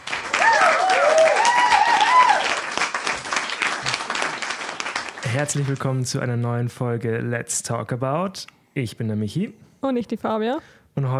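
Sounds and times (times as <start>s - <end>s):
recorded applause played in: 0.0s - 6.2s
speech: 5.4s - 11.1s.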